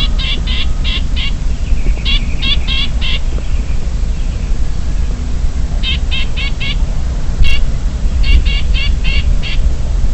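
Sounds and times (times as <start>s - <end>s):
Chinese grassbird subspecies sinicus rasping alarm calls in Shanli, Guangxi, China: 0.0s - 3.7s, 5.8s - 6.8s, 7.4s - 9.7s
low rumbling background noise: 0.0s - 10.1s.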